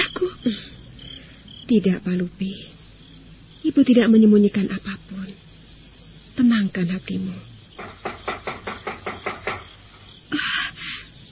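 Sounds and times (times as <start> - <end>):
speech: 0.2 - 0.7, 1.7 - 2.7, 3.6 - 5.1, 6.4 - 7.5
knocking on the wooden door of a remote hideout house: 7.8 - 9.8.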